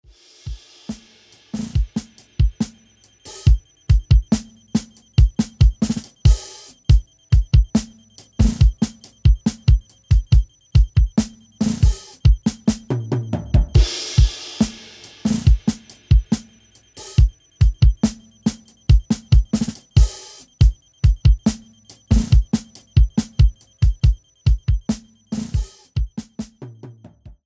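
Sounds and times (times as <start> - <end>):
tritone drums: 0.0 - 27.4.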